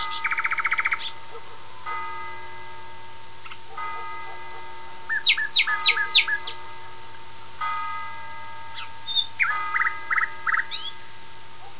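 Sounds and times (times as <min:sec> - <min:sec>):
Common nightingale song: 0:00.0 - 0:11.7
steady hum tones: 0:00.0 - 0:11.7.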